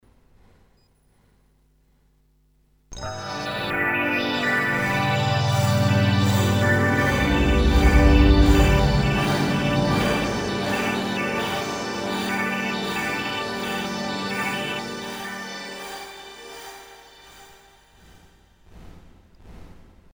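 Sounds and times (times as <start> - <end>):
synthesizer transwaves mixed: 3.0 - 18.2.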